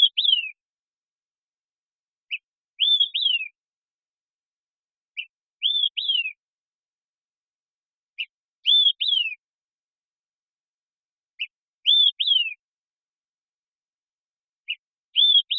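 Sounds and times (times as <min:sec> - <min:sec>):
Olive-Sided Flycatcher Contopus cooperi singing: 0:00.0 - 0:00.6, 0:02.2 - 0:03.6, 0:05.0 - 0:06.5, 0:08.0 - 0:09.5, 0:11.3 - 0:12.7, 0:14.6 - 0:15.5.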